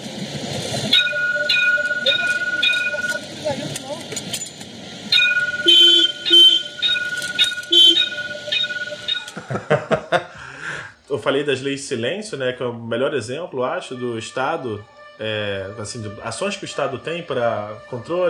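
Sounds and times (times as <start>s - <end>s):
light rail tram wheels rumbling and screeching on rails: 0.0s - 9.5s
light rail tram warning bell ringing: 0.9s - 9.7s
laughter: 9.3s - 10.8s
speech: 10.1s - 10.3s, 11.2s - 18.2s.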